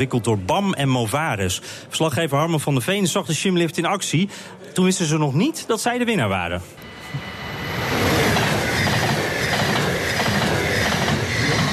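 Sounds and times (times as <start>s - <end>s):
speech: 0.0s - 7.4s
train wheels rumbling and clattering over the rails: 7.1s - 11.7s.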